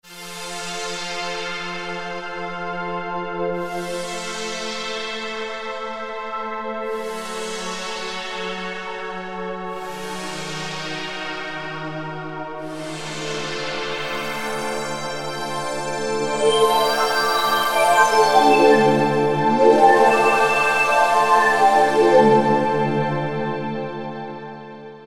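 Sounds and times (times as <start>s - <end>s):
Alesis Micron synthesizer pad: 12.8s - 24.8s.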